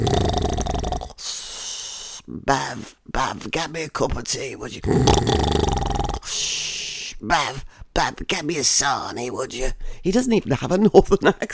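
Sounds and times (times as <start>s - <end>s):
person imitating a rattling throaty snore: 0.0s - 1.5s, 4.8s - 6.5s
speech: 2.5s - 6.4s, 7.2s - 11.5s.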